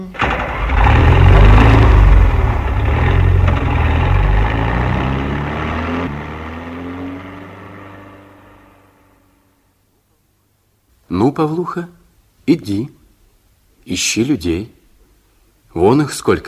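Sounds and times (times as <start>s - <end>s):
car engine revving and driving off: 0.1s - 9.5s
speech: 11.4s - 13.0s, 13.8s - 14.8s, 15.7s - 16.4s.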